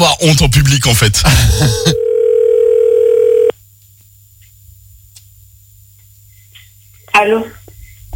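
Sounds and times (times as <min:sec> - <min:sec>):
speech: 0:00.0 - 0:02.1, 0:07.2 - 0:07.6
telephone dial tone while redialing a number: 0:02.0 - 0:03.5.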